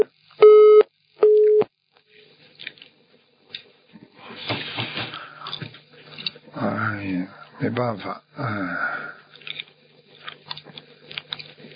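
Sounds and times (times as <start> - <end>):
telephone disconnection tone after a dropped call: 0.0 - 1.7
speech: 7.6 - 8.9.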